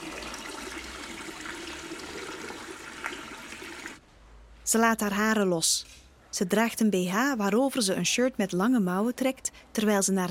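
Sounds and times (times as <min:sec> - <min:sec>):
water running from a tap: 0:00.0 - 0:04.0
speech: 0:04.7 - 0:10.2.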